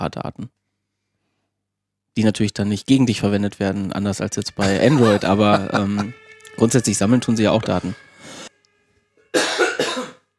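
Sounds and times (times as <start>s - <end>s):
speech: 0.0s - 0.6s, 2.2s - 8.1s
laughter: 4.3s - 8.5s
loud cough in harsh bursts: 4.6s - 6.1s, 9.3s - 10.2s.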